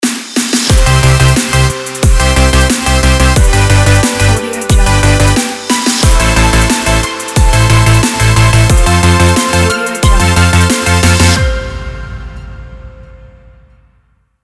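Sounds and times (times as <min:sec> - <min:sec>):
positive energy future bass logo jingle: 0:00.7 - 0:05.4, 0:06.0 - 0:13.8.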